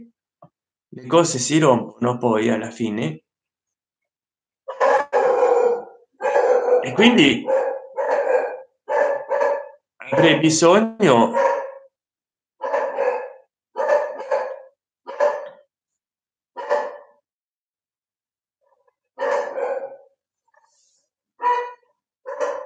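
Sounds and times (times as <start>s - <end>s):
speech: 1.0s - 3.2s, 6.8s - 7.6s, 10.1s - 11.6s
small dog barking: 4.7s - 10.4s, 11.3s - 11.9s, 12.6s - 15.6s, 16.6s - 17.2s, 19.2s - 20.1s, 21.4s - 22.6s.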